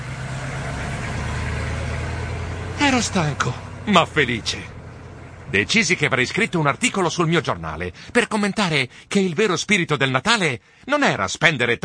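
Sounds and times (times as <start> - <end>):
huge truck's heavy engine rumbling: 0.0 - 11.8
speech: 2.9 - 4.8, 5.5 - 11.8.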